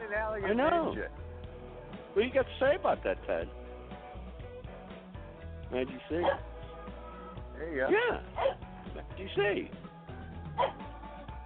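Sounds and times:
speech: 0:00.4 - 0:01.2, 0:02.2 - 0:03.6, 0:05.7 - 0:06.5, 0:07.6 - 0:09.8, 0:10.6 - 0:10.9
dog barking: 0:06.2 - 0:06.5, 0:08.3 - 0:08.7, 0:10.6 - 0:10.8.

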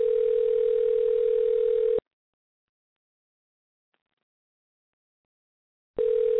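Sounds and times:
telephone ringback tone on an outgoing call: 0:00.0 - 0:02.0, 0:06.0 - 0:06.3.

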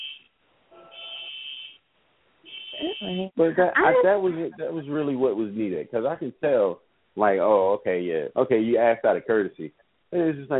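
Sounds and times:
shrill high-pitched alarm pulses: 0:00.0 - 0:00.2, 0:00.8 - 0:01.8
speech: 0:02.8 - 0:10.5
laughter: 0:03.4 - 0:10.5.

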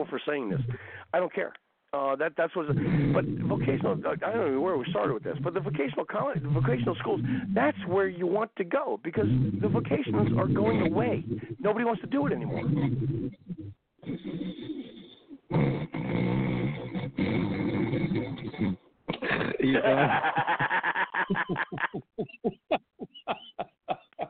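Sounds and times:
speech: 0:00.0 - 0:14.9, 0:19.6 - 0:22.4
loud groaning snoring with rattling snores: 0:02.7 - 0:08.0, 0:09.2 - 0:11.7, 0:12.3 - 0:19.8
laughter: 0:19.2 - 0:24.2.

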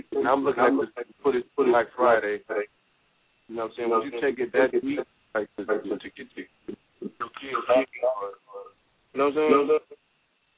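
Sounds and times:
garbled muffled tinny voice through a phone line: 0:00.0 - 0:02.6, 0:03.5 - 0:06.4, 0:07.0 - 0:08.6, 0:09.2 - 0:10.0
speech: 0:00.2 - 0:02.8, 0:03.5 - 0:08.4, 0:09.2 - 0:09.9.

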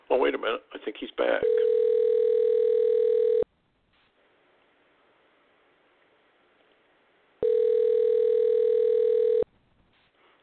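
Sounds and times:
speech: 0:00.1 - 0:01.8
telephone tone while calling someone: 0:01.4 - 0:03.5, 0:07.4 - 0:09.5
faint hiss: 0:03.6 - 0:07.4, 0:09.6 - 0:10.4.

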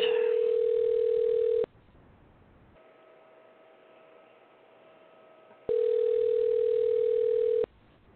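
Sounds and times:
ringback tone of an outgoing phone call: 0:00.0 - 0:01.7, 0:05.7 - 0:07.7.

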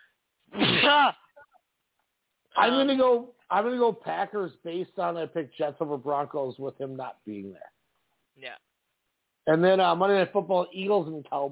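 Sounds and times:
person sneezing: 0:00.5 - 0:01.2
speech: 0:00.9 - 0:01.2, 0:02.6 - 0:07.7, 0:08.4 - 0:08.7, 0:09.5 - 0:11.4.

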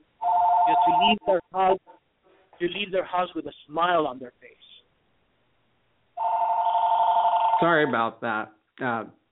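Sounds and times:
studio telephone ringing electronically: 0:00.2 - 0:01.2, 0:06.2 - 0:07.9
speech: 0:00.7 - 0:01.9, 0:02.6 - 0:04.7, 0:07.6 - 0:09.2.

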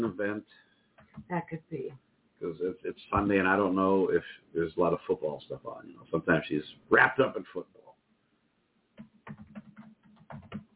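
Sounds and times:
speech: 0:00.0 - 0:07.8
faint typing on a computer keyboard: 0:09.0 - 0:10.7.

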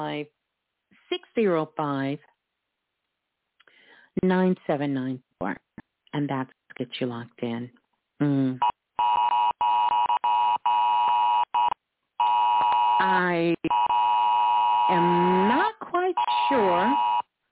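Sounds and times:
speech: 0:00.0 - 0:00.4, 0:01.1 - 0:02.3, 0:04.2 - 0:08.8, 0:13.0 - 0:13.9, 0:14.9 - 0:17.1
phone Amber Alert emergency alert tone: 0:09.0 - 0:15.6, 0:16.2 - 0:17.2.

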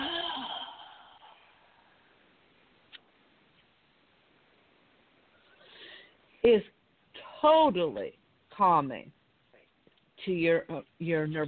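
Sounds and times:
soft breathy mouth exhale: 0:05.5 - 0:06.2
speech: 0:06.4 - 0:06.8, 0:07.4 - 0:09.2, 0:10.2 - 0:11.4.

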